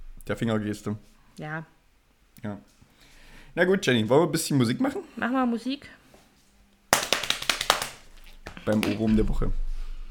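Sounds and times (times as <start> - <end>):
speech: 0.3 - 1.8, 2.4 - 2.8, 3.6 - 6.0, 8.7 - 9.6
hands slapping on cycling shorts: 6.9 - 9.0.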